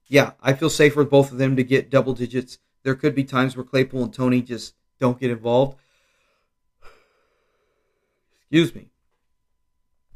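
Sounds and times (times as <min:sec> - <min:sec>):
speech: 0:00.1 - 0:05.8, 0:08.5 - 0:08.9
person yawning: 0:06.8 - 0:07.3.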